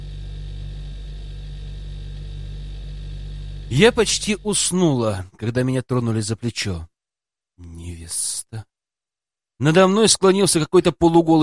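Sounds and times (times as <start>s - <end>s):
quiet steady refrigerator hum: 0.0s - 5.3s
faint electrical buzz: 0.0s - 5.6s
speech: 3.7s - 6.9s, 7.6s - 8.7s, 9.6s - 11.4s.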